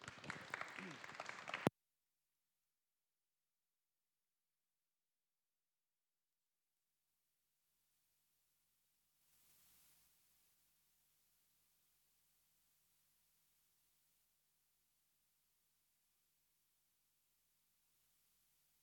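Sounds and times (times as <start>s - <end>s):
audience clapping: 0.0s - 1.7s.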